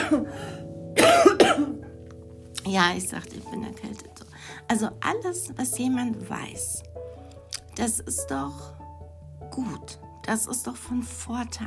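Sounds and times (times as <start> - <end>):
person coughing: 0.0 - 0.4, 1.0 - 1.9
speech: 0.1 - 1.3, 2.7 - 7.0, 7.8 - 8.8, 9.5 - 11.6.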